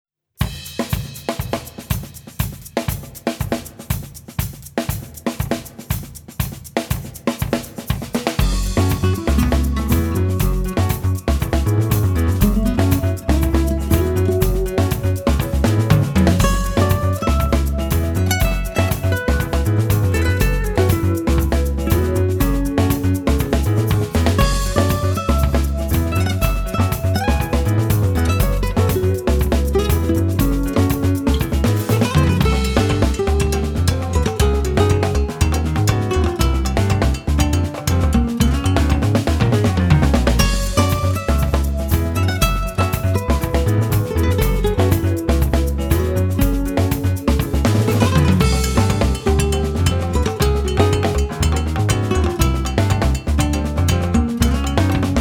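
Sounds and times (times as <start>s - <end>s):
samba rhythm: 0.4s - 55.1s.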